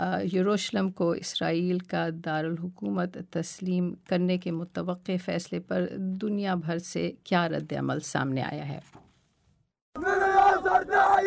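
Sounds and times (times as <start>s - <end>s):
speech: 0.0s - 9.0s, 10.0s - 11.2s
protesters chanting slogans at a rally in Gaza City: 10.0s - 11.2s.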